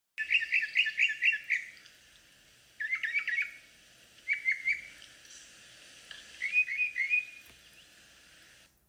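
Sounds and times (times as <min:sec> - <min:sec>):
northern mockingbird singing: 0:00.2 - 0:01.9, 0:02.8 - 0:05.0, 0:06.4 - 0:08.0.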